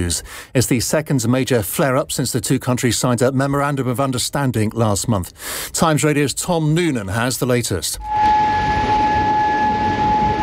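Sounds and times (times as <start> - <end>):
speech: 0.0 - 8.5
warning sirens in Bahrain: 8.0 - 10.4.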